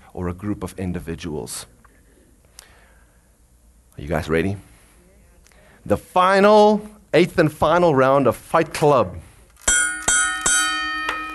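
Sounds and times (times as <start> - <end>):
speech: 0.2 - 1.8, 4.0 - 4.7, 5.8 - 9.3
bell struck with bright ringing tones: 9.6 - 11.3.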